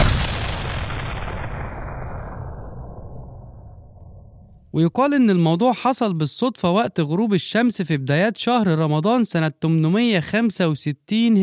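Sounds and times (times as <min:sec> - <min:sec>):
newly gifted cannon being test-fired: 0:00.0 - 0:04.6
speech: 0:04.7 - 0:11.4.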